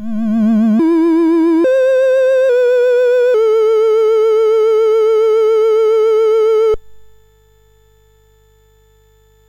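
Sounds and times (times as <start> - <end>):
MOS6581R4 SID chip synth sound: 0.0 - 6.8.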